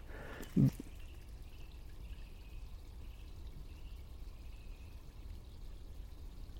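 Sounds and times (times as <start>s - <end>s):
meltwater trickling down a slope: 0.0s - 6.5s.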